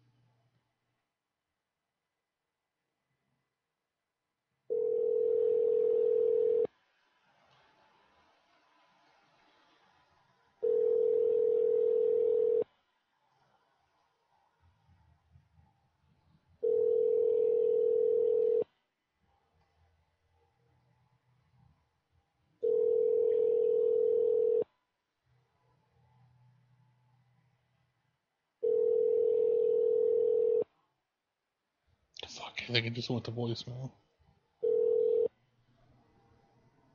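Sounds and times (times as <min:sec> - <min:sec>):
telephone tones while placing a call: 0:04.7 - 0:06.7, 0:10.6 - 0:12.7, 0:16.6 - 0:18.6, 0:22.6 - 0:24.6, 0:28.6 - 0:30.6, 0:34.6 - 0:35.4
speech: 0:32.5 - 0:34.1.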